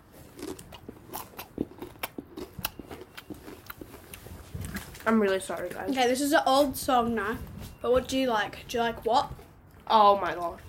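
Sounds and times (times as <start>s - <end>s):
crunchy Doritos tortilla chips being eaten: 0.1s - 5.1s
speech: 5.0s - 10.6s.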